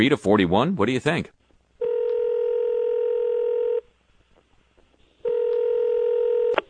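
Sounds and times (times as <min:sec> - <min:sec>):
speech: 0:00.0 - 0:01.4
telephone dialing tones: 0:01.8 - 0:03.8, 0:05.2 - 0:06.6.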